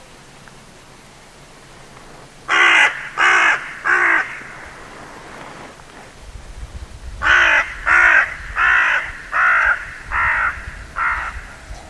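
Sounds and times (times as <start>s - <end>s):
bird giving harsh hoarse caws: 2.4s - 5.5s, 7.2s - 11.7s.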